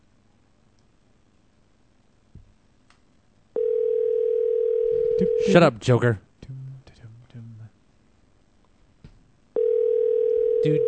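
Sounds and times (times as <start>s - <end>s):
phone line tone: 3.6s - 5.6s, 9.6s - 10.8s
speech: 5.4s - 6.3s.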